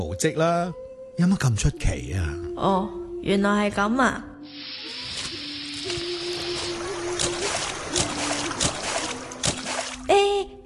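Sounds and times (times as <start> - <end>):
speech: 0.0 - 4.8
footsteps splashing through a shallow stream: 5.2 - 10.1.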